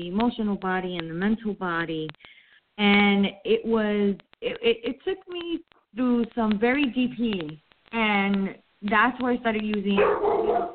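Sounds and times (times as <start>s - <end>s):
speech: 0.0s - 10.7s
pet dog barking: 10.0s - 10.7s.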